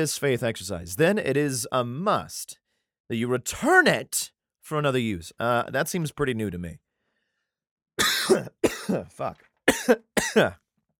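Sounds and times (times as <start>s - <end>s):
speech: 0.0s - 6.8s, 8.3s - 10.6s
raspy person coughing: 8.0s - 10.6s.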